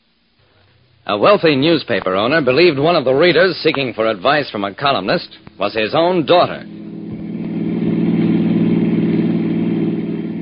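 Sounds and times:
speech: 1.0 - 6.8
car engine revving while driving on the road: 4.8 - 10.4.

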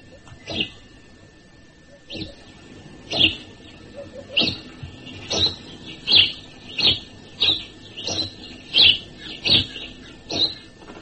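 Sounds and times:
male house sparrow species recognition call: 2.1 - 10.7.

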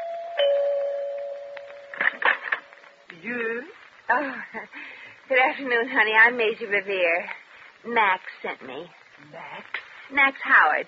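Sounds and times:
doorbell chiming: 0.0 - 2.1
bright clattering notes: 0.0 - 3.1
speech: 3.2 - 10.8.

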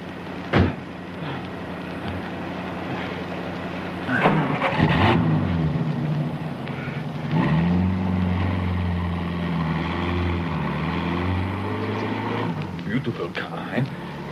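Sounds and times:
clunks and knocks: 0.5 - 0.8
car engine humming and revving as the car drives: 2.7 - 14.2.

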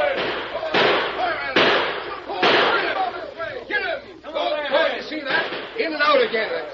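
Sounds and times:
gunshots in a radio drama: 0.0 - 3.1, 5.3 - 6.5
people shouting: 0.0 - 6.1.

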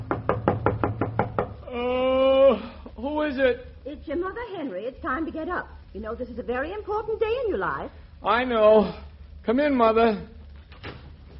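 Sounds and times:
knocking on a bedroom door: 0.0 - 1.6
speech: 3.3 - 10.4.

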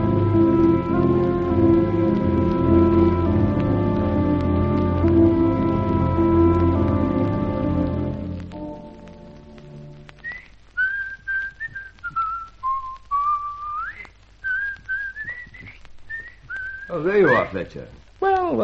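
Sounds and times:
low sustained chord: 0.0 - 10.1
man whistling a tune: 10.2 - 17.5
speech: 17.6 - 18.0.

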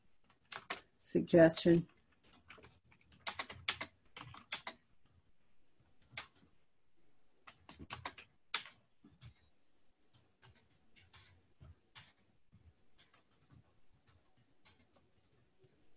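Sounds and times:
typing on a computer keyboard: 0.2 - 5.2, 6.0 - 6.5, 7.4 - 9.5, 10.1 - 15.8
speech: 1.1 - 1.9.

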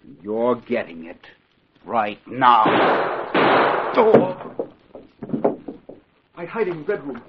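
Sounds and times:
speech: 0.2 - 4.6, 6.4 - 7.2
gunshot from a staged shooting: 2.6 - 4.7
soft thumps: 4.1 - 6.1.

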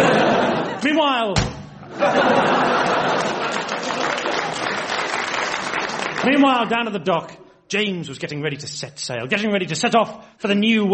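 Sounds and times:
laughter: 0.0 - 1.0, 1.8 - 5.0
speech: 0.9 - 2.4, 6.2 - 10.9
door slamming: 1.4 - 1.9.

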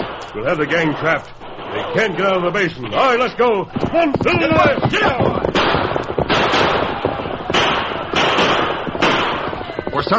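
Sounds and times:
dense rumbling din: 0.0 - 10.1
speech: 0.3 - 5.6, 10.0 - 10.1
gunfire exchange between posse and outlaws: 3.8 - 9.7.

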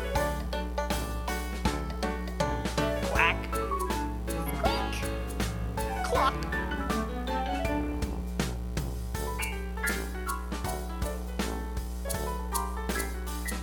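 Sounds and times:
bouncy backing tune of a farm animal song: 0.0 - 13.6
nasal duck quacks: 2.8 - 5.1, 5.9 - 7.0.

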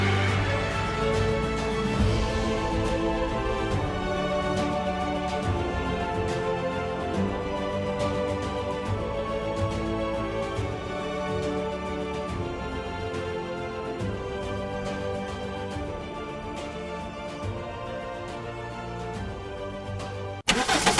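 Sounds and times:
music: 0.0 - 20.9
Mercedes-Benz GLA 250 compact SUV engine starting: 20.4 - 20.9.

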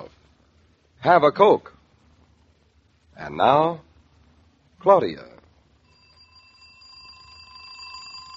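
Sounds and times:
speech: 1.0 - 1.7, 3.2 - 3.9, 4.8 - 5.3
alarm clock ringing: 5.8 - 8.3.

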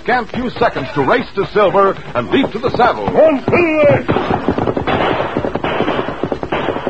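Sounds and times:
speech: 0.0 - 5.5
laughter: 0.6 - 4.8
gunfire from a gang in a western radio drama set in a canyon: 2.4 - 6.8.

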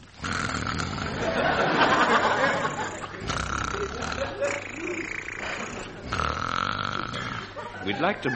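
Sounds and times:
man imitating snoring in comic fashion: 0.0 - 7.6
laughter: 1.1 - 6.3, 7.2 - 8.3
speech: 7.9 - 8.3.

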